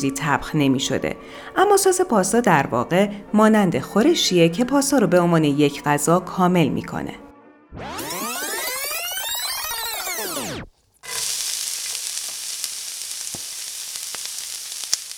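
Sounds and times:
speech: 0.0 - 8.1
small pops and crackles of frying onion and meat: 10.6 - 15.1
onion and meat frying with turmeric in a pan: 10.7 - 15.1.

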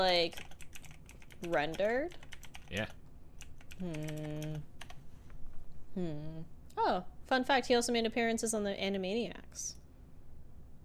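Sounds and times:
speech: 0.0 - 0.5, 1.4 - 3.0, 3.8 - 4.7, 6.0 - 9.8
typing on a computer keyboard: 0.2 - 5.0.

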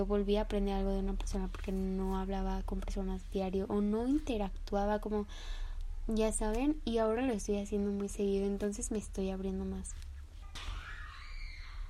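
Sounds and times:
speech: 0.0 - 10.7
low rumbling background noise: 0.0 - 11.8
high-pitched scream: 10.5 - 11.8.

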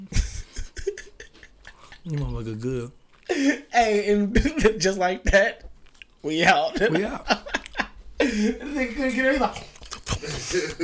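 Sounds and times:
laughter: 0.1 - 2.6, 6.7 - 8.9, 10.1 - 10.8
quick wet chewing and crunching: 1.2 - 4.2, 4.8 - 10.8
speech: 2.0 - 7.4, 8.2 - 10.8.

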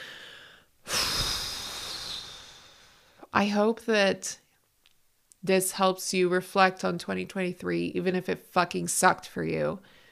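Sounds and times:
single deep breath taken as a calming pause: 0.0 - 3.3, 9.8 - 10.1
speech: 3.4 - 4.4, 5.4 - 10.0.

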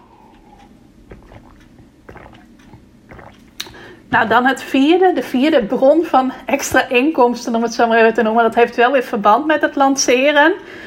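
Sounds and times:
person sipping water with slurps and swallows: 0.0 - 4.2
speech: 4.1 - 10.8.

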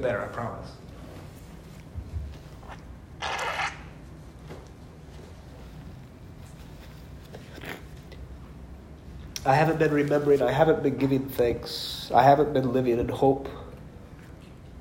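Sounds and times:
speech: 0.0 - 0.9, 9.5 - 13.6
nose blowing: 2.6 - 4.0.

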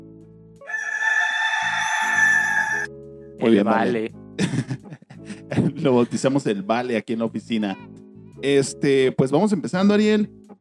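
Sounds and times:
autotuned rooster crowing: 0.6 - 2.9
backing of synthetic notes: 0.7 - 2.9
speech: 3.4 - 5.0, 5.8 - 10.4
laughter: 4.4 - 6.2.

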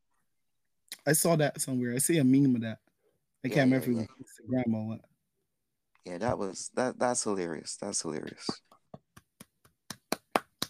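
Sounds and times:
speech: 1.0 - 5.1, 6.0 - 8.7
hand clapping: 8.3 - 10.6.

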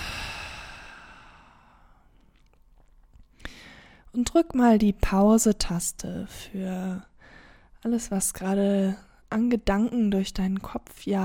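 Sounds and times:
deep breath released through the mouth during a yoga session: 0.0 - 2.1
speech: 4.1 - 7.1, 7.8 - 11.2.

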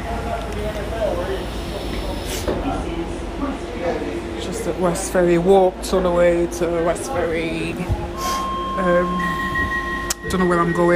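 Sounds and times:
faint murmuring voices: 0.0 - 10.9
train carriage in motion rumbling in London: 0.0 - 10.9
speech: 4.7 - 8.0, 8.8 - 9.3, 10.3 - 10.9.

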